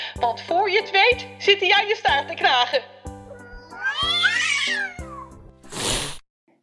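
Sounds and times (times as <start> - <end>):
speech: 0.2 - 3.0, 4.0 - 5.0
cat hissing: 3.2 - 6.1
cat meowing: 3.3 - 5.5.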